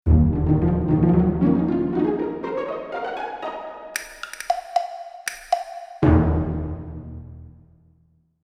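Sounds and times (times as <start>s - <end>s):
pizzicato strings: 0.1s - 7.3s
percussion: 4.0s - 6.6s.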